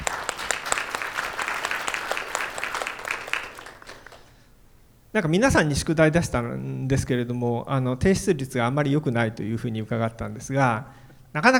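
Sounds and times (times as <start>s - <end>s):
roomful of people clapping: 0.0s - 4.5s
speech: 5.2s - 11.5s.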